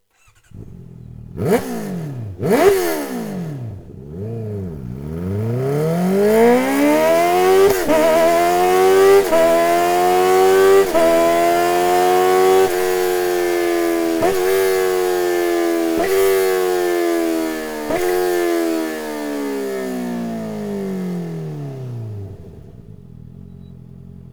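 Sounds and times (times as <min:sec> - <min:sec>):
Honda CBR650F motorcycle with Akrapovic racing exhaust system: 0:00.4 - 0:24.3.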